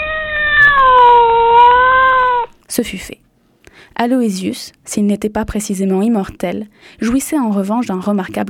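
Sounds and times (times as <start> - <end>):
long cat meow: 0.0 - 2.6
speech: 2.7 - 8.4.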